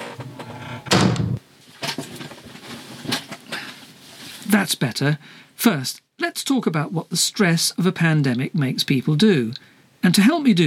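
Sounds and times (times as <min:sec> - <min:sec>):
door closing thud: 0:00.4 - 0:01.4
speech: 0:04.6 - 0:10.6.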